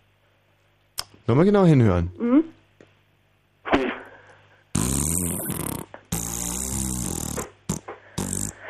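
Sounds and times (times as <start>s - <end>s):
speech: 1.3s - 2.4s
horse farting: 4.8s - 8.6s.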